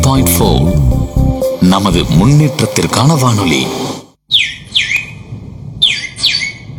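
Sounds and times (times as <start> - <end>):
speech: 0.1 - 4.5
sparrow chirping: 4.3 - 5.2, 5.8 - 6.7.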